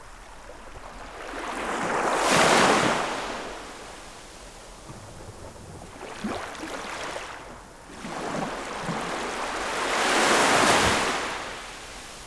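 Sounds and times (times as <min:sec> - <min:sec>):
gentle ocean waves washing onto a southern island shore: 0:00.0 - 0:12.2.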